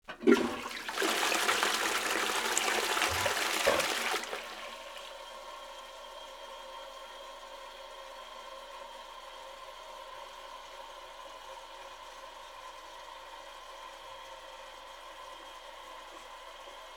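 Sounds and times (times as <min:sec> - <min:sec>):
toilet cistern water filling up: 0:00.0 - 0:05.4
toilet flushing: 0:00.0 - 0:06.0.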